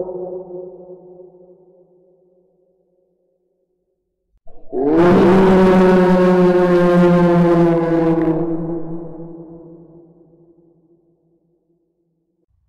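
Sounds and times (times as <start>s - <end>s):
scary horror sound effects: 4.5s - 9.8s.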